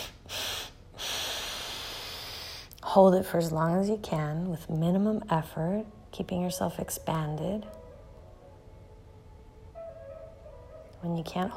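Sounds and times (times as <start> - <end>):
deep inhalations through the nose during a guided breathing exercise: 0.0 - 2.7
speech: 2.9 - 7.8, 11.0 - 11.5.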